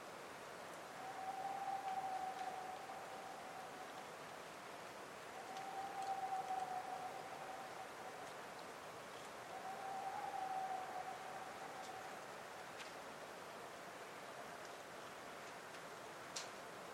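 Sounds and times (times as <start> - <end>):
steady even hiss: 0.0 - 16.9
whiskered screech owl calling in Cave Creek Canyon, Arizona: 0.9 - 4.1, 5.3 - 8.4, 9.4 - 12.5
faint high ticks: 1.6 - 2.9, 5.4 - 7.0, 8.1 - 9.4, 11.7 - 13.1, 14.6 - 16.6.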